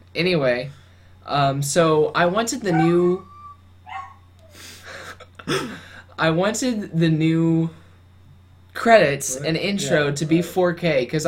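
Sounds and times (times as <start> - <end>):
steady low electrical hum: 0.0 - 11.2
speech: 0.2 - 3.3, 5.5 - 7.8, 8.8 - 11.2
dog giving a longer rough bark: 2.6 - 4.3
dog giving a short high yelp: 2.6 - 4.6.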